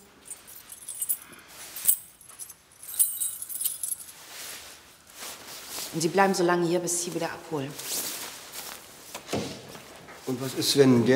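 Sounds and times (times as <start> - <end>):
keys jangling and clinking: 0.0 - 4.3
rustling handling sounds: 0.1 - 10.9
speech: 6.0 - 8.0, 10.3 - 11.1.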